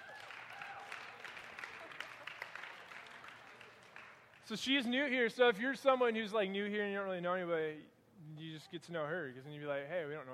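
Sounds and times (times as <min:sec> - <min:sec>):
room full of people applauding: 0:00.0 - 0:04.6
speech: 0:04.5 - 0:10.3.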